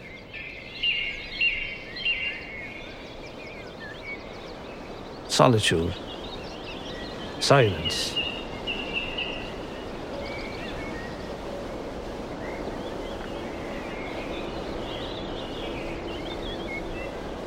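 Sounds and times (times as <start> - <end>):
birds chirping and warbling in countryside: 0.0 - 17.4
breezy outdoor hush in quiet countryside: 4.4 - 17.4
speech: 5.4 - 6.0, 7.4 - 8.2.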